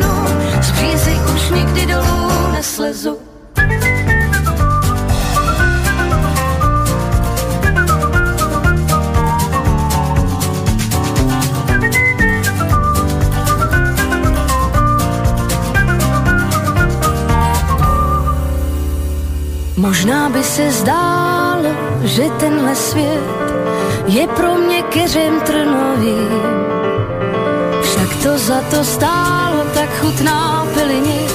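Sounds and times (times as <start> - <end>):
full steady instrumental backing music: 0.0 - 2.8, 3.6 - 31.3
speech: 2.6 - 3.3, 20.3 - 31.3
person whistling a melody: 3.6 - 19.1.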